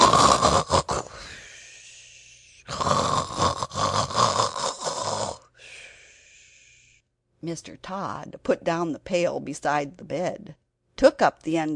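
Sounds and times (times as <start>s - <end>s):
loud rasping snoring with snorts: 0.0s - 1.4s, 2.6s - 5.5s
speech: 7.4s - 11.7s.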